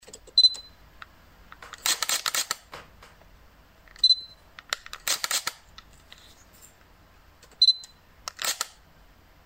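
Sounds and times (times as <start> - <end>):
Sony camera shutter: 1.8 - 2.7, 4.7 - 5.6, 8.3 - 8.8.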